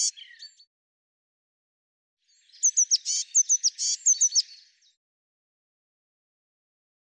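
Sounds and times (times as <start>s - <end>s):
Eurasian blue tit calling with sharp hooked chirps and buzzy bursts: 2.5s - 4.6s.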